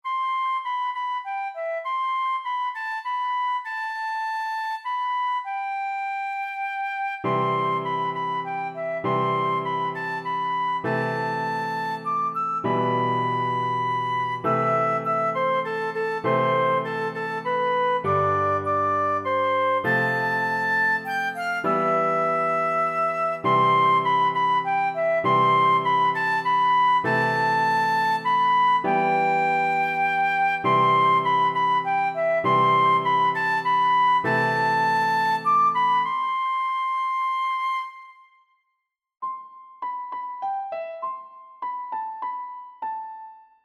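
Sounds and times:
flute: 0.0 - 38.6
piano: 0.1 - 38.2, 39.2 - 43.6.

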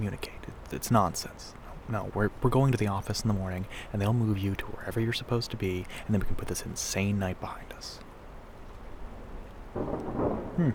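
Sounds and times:
speech: 0.0 - 8.1, 9.8 - 10.7
rain hiss: 0.0 - 10.7
thunder rumbling during a storm: 9.6 - 10.7.

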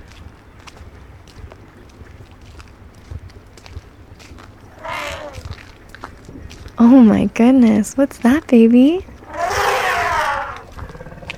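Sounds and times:
elephant trumpeting: 4.7 - 5.5, 9.2 - 11.3
speech: 6.8 - 9.1.

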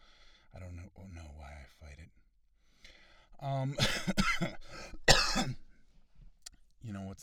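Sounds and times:
speech: 3.4 - 4.7
person clearing throat: 3.8 - 5.6
person coughing: 3.8 - 5.6.

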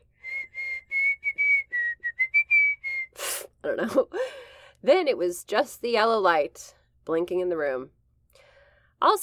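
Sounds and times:
Navy whistle sounding: 0.2 - 3.2
speech: 3.6 - 8.0, 9.0 - 9.2.

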